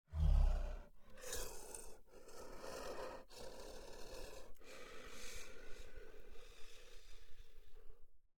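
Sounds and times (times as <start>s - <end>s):
yeti monster breathing: 0.1s - 8.1s.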